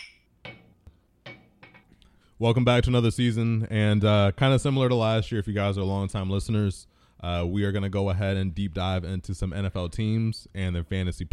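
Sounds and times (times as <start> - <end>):
glasses clinking in a toast: 0.0 - 2.0
speech: 2.4 - 11.3.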